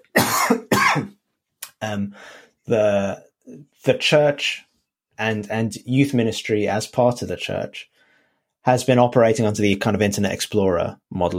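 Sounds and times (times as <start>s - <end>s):
person coughing: 0.0s - 1.2s
speech: 1.8s - 7.9s, 8.6s - 11.3s.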